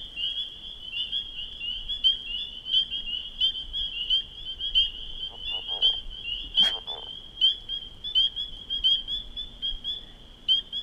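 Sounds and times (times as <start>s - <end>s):
dense chorus of spring peepers: 0.0s - 10.8s
clearer single peeps from frogs: 4.1s - 9.9s
lower rattling leopard frog call: 5.2s - 7.2s.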